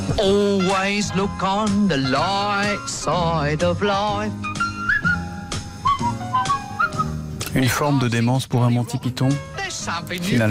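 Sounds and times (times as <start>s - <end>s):
speech: 0.2s - 4.5s, 7.6s - 10.4s
person whistling a cheerful tune: 4.4s - 7.2s.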